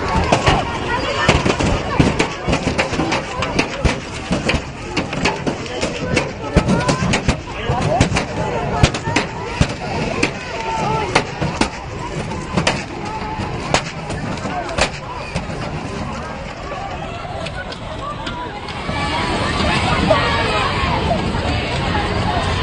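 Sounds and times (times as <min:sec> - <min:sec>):
sharp bangs and cracks: 0:00.0 - 0:16.4
crowd of protesters shouting in a street confrontation with police: 0:00.0 - 0:22.6.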